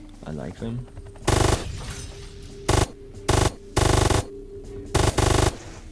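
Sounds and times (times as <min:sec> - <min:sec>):
speech: 0:00.2 - 0:01.0
video game helicopter engine droning hum: 0:00.8 - 0:01.8, 0:02.5 - 0:05.9
video game gunfire bursts shooting drones: 0:01.2 - 0:02.0, 0:02.7 - 0:04.3, 0:05.0 - 0:05.9.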